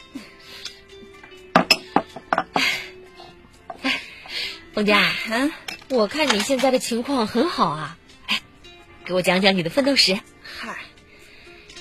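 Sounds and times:
glasses clinking in a toast: 1.5s - 2.6s
faint tableware clatter: 1.6s - 2.6s
speech: 4.8s - 8.0s, 9.1s - 10.2s.

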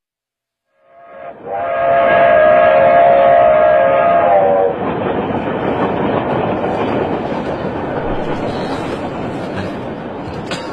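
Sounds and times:
train horn blast: 0.8s - 4.8s
moving train rumbling on rails: 1.1s - 10.7s.

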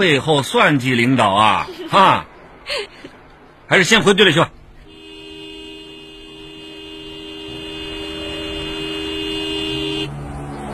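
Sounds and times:
speech: 0.0s - 3.0s, 3.7s - 4.6s
motorcycle horn honking: 4.8s - 10.1s.

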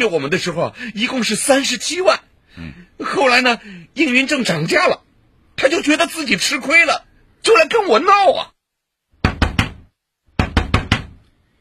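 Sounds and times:
speech: 0.0s - 5.0s, 5.6s - 8.6s
knocking on a door: 9.2s - 11.2s.

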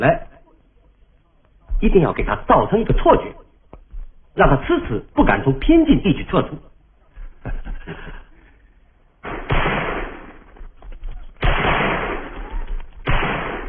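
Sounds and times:
speech: 0.0s - 0.3s, 1.8s - 3.4s, 4.4s - 6.7s, 7.4s - 8.2s
laughter: 7.1s - 8.7s
gunfire volleys from a regiment's live-fire shooting exercise: 9.2s - 10.7s, 11.4s - 13.6s.

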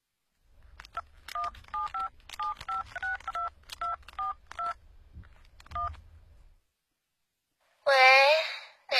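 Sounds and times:
faint low hum: 0.0s - 7.9s
mobile phone keypad dialing tones: 1.3s - 4.8s, 5.7s - 6.0s.

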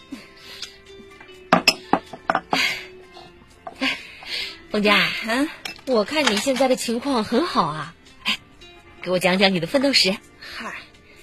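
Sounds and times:
glasses clinking in a toast: 1.5s - 2.6s
speech: 4.8s - 8.0s, 9.0s - 10.2s.

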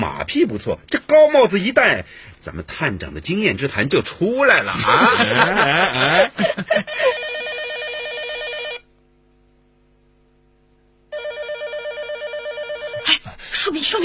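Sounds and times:
speech: 0.1s - 7.2s
laughter: 4.6s - 7.2s
telephone ringing with buzzing bell tone: 6.7s - 8.9s, 11.1s - 13.1s.

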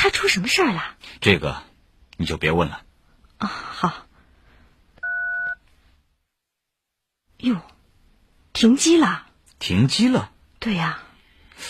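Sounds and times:
speech: 0.0s - 4.0s, 7.4s - 7.7s, 8.6s - 11.0s
telephone keypad dialing tone: 5.0s - 5.6s.

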